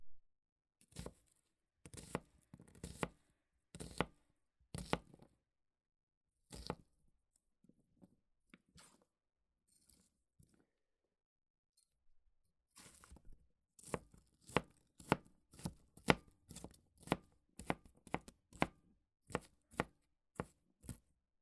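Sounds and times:
knife chopping an onion on a cutting board: 1.9 - 3.2, 4.8 - 5.1, 13.8 - 21.0.

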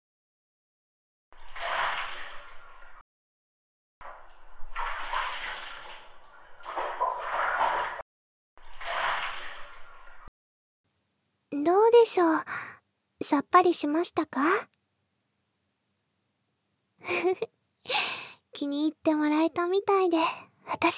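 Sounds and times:
hot water rinsing off after scrubbing: 1.4 - 3.0, 4.0 - 8.0, 8.6 - 10.3
speech: 12.1 - 12.6, 13.2 - 14.8, 17.0 - 20.9.

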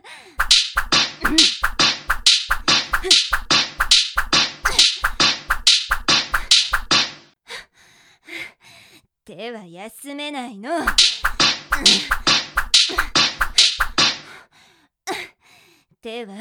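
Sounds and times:
whip lashes striking skin: 0.4 - 7.3, 10.9 - 14.3
speech: 9.3 - 11.2, 11.8 - 12.2, 16.1 - 16.4.

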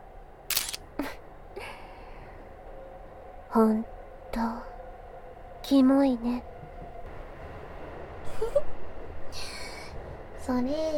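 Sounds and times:
camera shutter firing as a photo is taken: 0.5 - 0.8
speech: 3.6 - 4.7, 5.7 - 6.5, 10.5 - 10.9.

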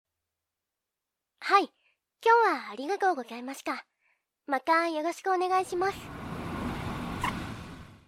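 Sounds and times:
speech: 1.4 - 3.9, 4.5 - 6.1
brakes squealing: 5.7 - 8.0
vehicle engine and road noise rumbling: 5.7 - 8.0.

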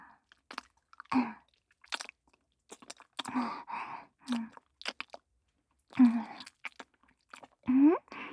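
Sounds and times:
wet mouth chewing and smacking: 0.3 - 1.1, 1.7 - 3.3, 4.3 - 5.3, 5.9 - 8.3.

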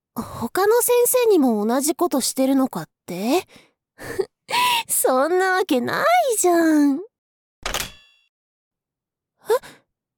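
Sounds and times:
speech: 0.2 - 7.1, 9.5 - 9.8
door lock turning clunk: 7.6 - 8.0.

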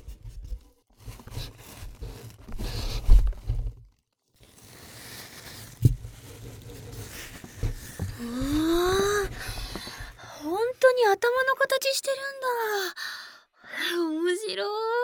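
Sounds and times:
scissors cutting open a newly delivered package at home: 1.0 - 3.5, 4.4 - 10.3
wrapping crinkling as it is pulled apart: 1.0 - 11.4
speech: 11.9 - 13.2, 14.0 - 14.8.

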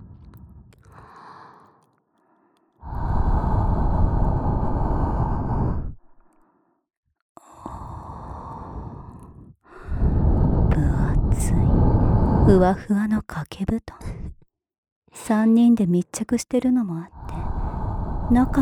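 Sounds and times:
slow heavy warm humid breathy exhales: 0.0 - 6.8, 7.4 - 12.5
speech: 12.6 - 14.4, 15.2 - 17.2, 18.3 - 18.6.

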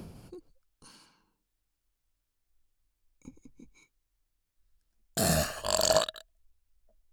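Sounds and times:
throaty burps: 5.2 - 6.2.

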